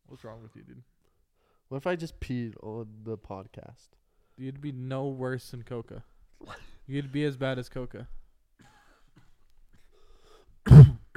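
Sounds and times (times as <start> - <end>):
speech: 0.2 - 1.0, 1.7 - 8.2
harsh cough into the microphone: 8.6 - 9.9, 10.6 - 11.1.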